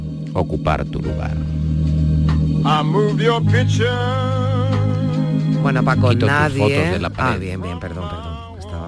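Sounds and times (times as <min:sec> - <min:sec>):
speech: 0:00.4 - 0:01.6, 0:02.7 - 0:04.4, 0:05.7 - 0:08.3
soft mellow farewell song on the radio: 0:02.6 - 0:08.8.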